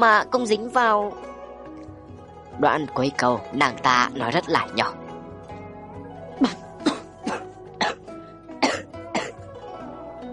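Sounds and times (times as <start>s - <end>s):
speech: 0.0s - 1.3s, 2.6s - 5.0s, 6.4s - 6.6s
warning cough: 6.4s - 9.4s.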